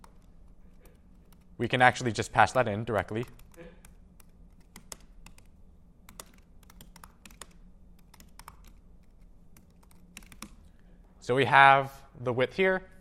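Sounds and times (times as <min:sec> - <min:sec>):
typing on a computer keyboard during a coding session: 0:00.0 - 0:01.6, 0:02.4 - 0:05.5, 0:06.1 - 0:10.7
speech: 0:01.6 - 0:03.7, 0:11.3 - 0:12.9.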